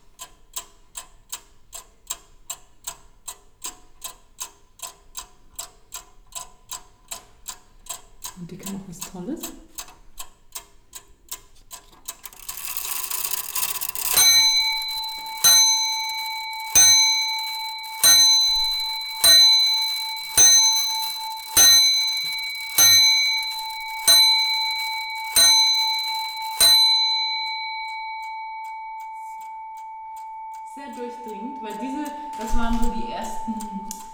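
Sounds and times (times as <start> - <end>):
antique clock ticking: 0.0 - 34.1
speech: 8.5 - 9.7
antique clock bell chiming the hour: 12.3 - 34.1.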